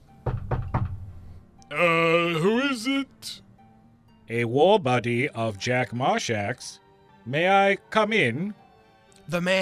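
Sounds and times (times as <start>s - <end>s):
firm knocks on a wooden door: 0.2s - 1.1s
speech: 1.7s - 3.4s, 4.3s - 8.6s, 9.3s - 9.6s.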